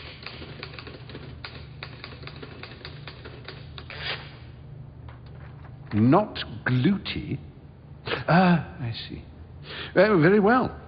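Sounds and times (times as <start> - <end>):
rapid typing on a QWERTY keyboard: 0.0 - 3.9
low hum: 0.0 - 10.8
speech: 5.9 - 7.5, 8.3 - 9.3, 10.0 - 10.8.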